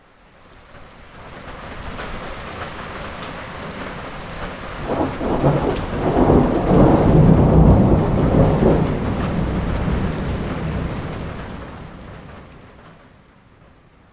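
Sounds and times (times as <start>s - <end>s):
thunderstorm in the Himalaya: 4.8s - 13.0s.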